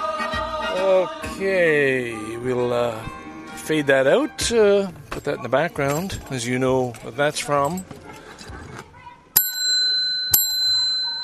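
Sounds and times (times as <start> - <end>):
speech: 0.8 - 8.0
bicycle bell ringing: 9.4 - 11.2.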